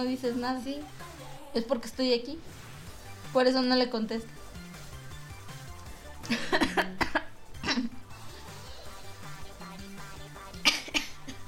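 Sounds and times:
speech: 0.0 - 2.6, 3.3 - 4.4, 6.3 - 7.1
person faking a cough: 6.3 - 8.0, 10.6 - 11.4.

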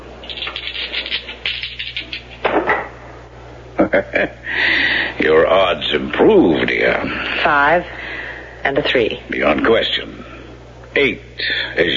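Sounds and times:
dice rattling and clattering during a craps game at a gambling table: 0.2 - 2.3
laughter: 3.8 - 5.0
speech: 4.0 - 8.0, 8.6 - 10.3, 11.0 - 11.9.

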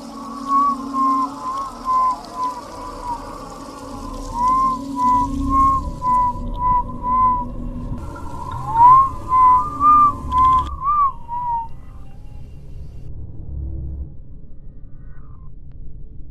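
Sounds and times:
low rumble: 0.0 - 16.2
person whistling a wavering melodic tune in a dark house: 0.3 - 3.4, 4.2 - 7.5, 8.6 - 11.8.

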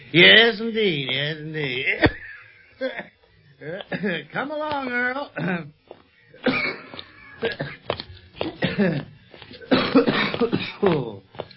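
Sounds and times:
speech: 0.1 - 2.2, 2.8 - 5.8, 7.4 - 7.8, 8.8 - 9.1, 9.9 - 11.5
man coughing: 3.7 - 4.4, 5.3 - 5.8, 6.4 - 11.2.

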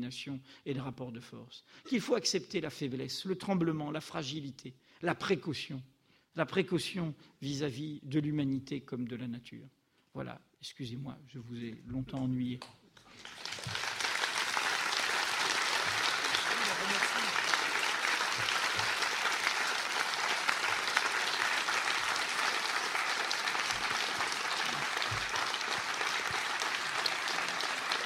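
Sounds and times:
speech: 0.0 - 13.8
audience applause after a conference talk: 13.1 - 28.0.

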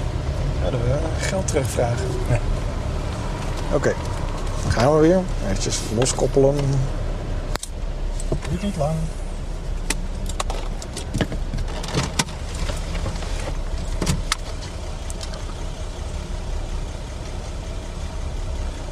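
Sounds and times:
car engine idling unevenly after a visit to the garage: 0.0 - 18.8
speech: 0.6 - 2.6, 3.7 - 7.0, 8.5 - 9.2
sharp clicks and rattles from the idling car engine: 1.2 - 6.8, 9.7 - 18.8.

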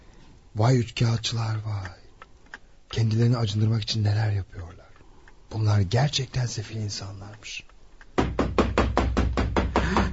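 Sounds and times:
speech: 0.6 - 2.0, 2.9 - 4.9, 5.5 - 7.7
knocking on a door: 8.2 - 10.1.

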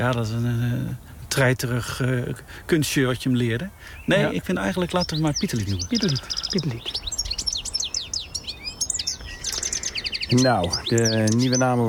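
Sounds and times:
speech: 0.0 - 7.1, 10.3 - 11.8
European goldfinch song: 3.0 - 11.8.

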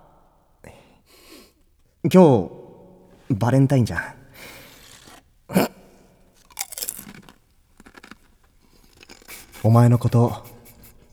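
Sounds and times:
speech: 2.0 - 2.6, 3.3 - 4.2, 9.6 - 10.5
potato chips crunching as they are bitten and chewed: 4.4 - 5.7, 6.3 - 10.8.

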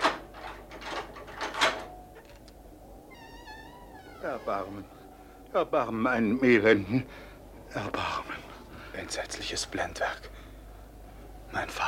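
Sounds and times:
keys unlocking and opening a tower door: 0.0 - 2.6
speech: 4.2 - 8.4, 9.0 - 10.4, 11.5 - 11.8.

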